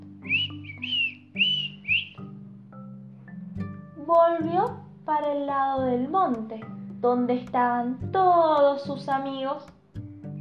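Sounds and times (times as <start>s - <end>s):
soft human whistling: 0.2s - 2.3s
speech: 4.1s - 9.8s.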